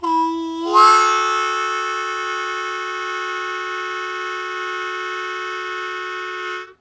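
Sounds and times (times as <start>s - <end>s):
blues chord attack in D on a harmonica: 0.0s - 6.8s.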